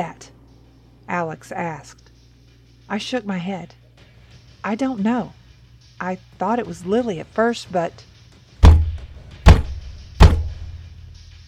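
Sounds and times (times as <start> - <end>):
speech: 0.0 - 0.3, 1.1 - 2.0, 2.9 - 3.8, 4.6 - 5.4, 6.0 - 8.1
fists pounding on a wooden bedroom door: 8.6 - 10.8.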